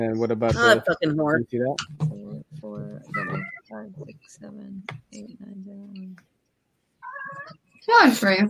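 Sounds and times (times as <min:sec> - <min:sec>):
speech: 0:00.0 - 0:02.1, 0:03.0 - 0:06.3, 0:07.2 - 0:08.4
cat meowing: 0:03.1 - 0:03.6, 0:07.0 - 0:07.6.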